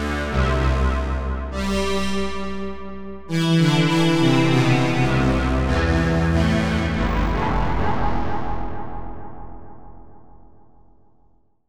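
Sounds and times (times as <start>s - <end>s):
cosmic keyboard music: 0.2s - 9.0s.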